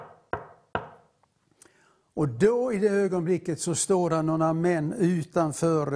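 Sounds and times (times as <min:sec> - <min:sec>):
knocking on a door: 0:00.0 - 0:01.0
speech: 0:02.2 - 0:05.9.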